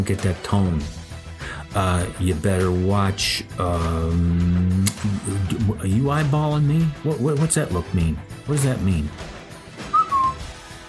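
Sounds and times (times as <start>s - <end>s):
speech: 0.0s - 1.0s, 1.7s - 9.3s
person whistling two short clear notes: 9.9s - 10.4s.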